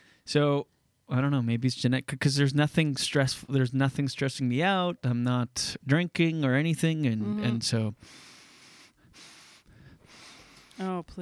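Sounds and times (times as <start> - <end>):
speech: 0.3 - 8.3, 10.8 - 11.2
heavy breathing into a microphone: 7.2 - 10.8.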